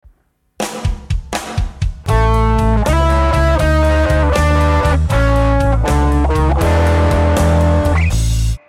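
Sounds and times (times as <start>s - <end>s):
blues turnaround lick on guitar: 2.1s - 8.6s.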